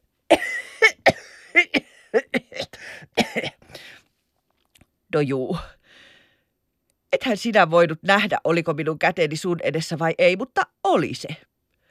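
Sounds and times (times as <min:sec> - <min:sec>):
person coughing into a hand over the mouth: 0:00.3 - 0:03.7
speech: 0:05.2 - 0:05.8, 0:07.2 - 0:11.5.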